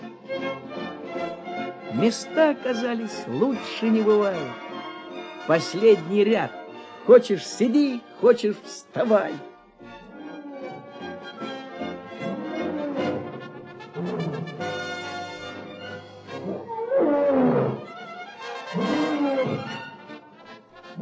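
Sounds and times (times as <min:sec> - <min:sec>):
speech: 0:01.9 - 0:04.6, 0:05.5 - 0:09.5
Atlas lions roaring: 0:10.1 - 0:11.4, 0:12.2 - 0:14.8, 0:16.0 - 0:18.0, 0:18.6 - 0:20.0.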